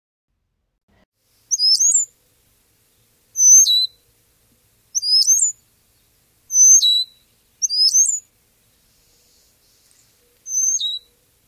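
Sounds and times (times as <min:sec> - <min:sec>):
brown-headed cowbird whistled calls: 0:01.4 - 0:02.2, 0:02.9 - 0:04.2, 0:04.9 - 0:11.4.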